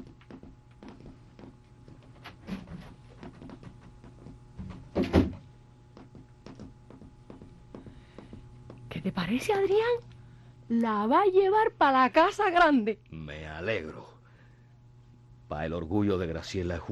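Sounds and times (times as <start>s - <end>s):
footsteps: 0.0s - 9.9s
door opening and shutting with a heavy thud: 4.6s - 5.4s
speech: 9.2s - 10.1s, 10.7s - 14.1s, 15.5s - 16.9s.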